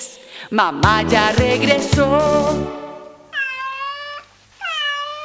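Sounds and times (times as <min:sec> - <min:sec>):
speech: 0:00.5 - 0:02.8
cat meowing: 0:03.3 - 0:05.1.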